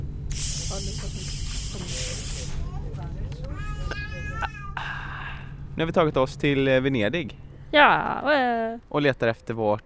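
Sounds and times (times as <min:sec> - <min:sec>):
fizzing hiss of opened soda bottle: 0:00.3 - 0:02.6
speech: 0:05.8 - 0:09.8.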